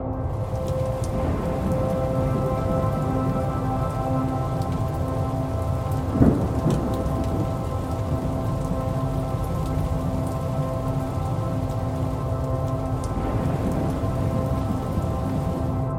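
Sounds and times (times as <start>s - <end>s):
ambient synth pad: 0.0s - 15.9s.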